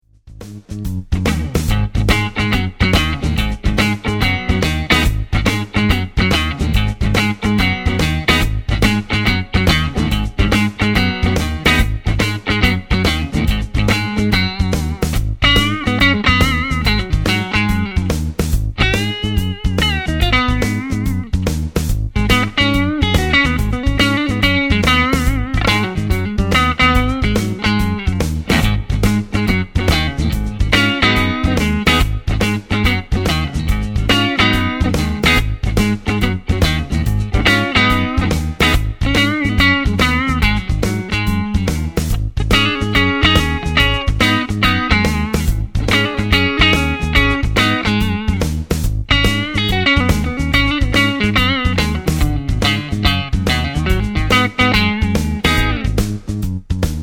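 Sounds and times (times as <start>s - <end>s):
clean Stratocaster electric guitar on neck pickup: 0.4s - 57.0s.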